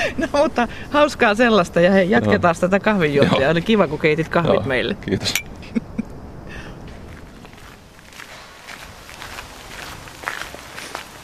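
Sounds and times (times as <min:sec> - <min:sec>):
speech: 0:00.0 - 0:05.9
steady hiss: 0:00.0 - 0:11.2
footsteps of brisk walking: 0:06.9 - 0:11.2.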